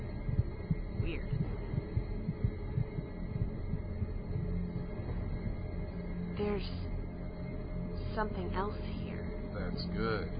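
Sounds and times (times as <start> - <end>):
heartbeat thumping: 0.0 - 6.0
faint hum: 0.0 - 10.3
speech: 1.1 - 1.4, 6.4 - 6.9, 8.2 - 9.0, 9.6 - 10.3.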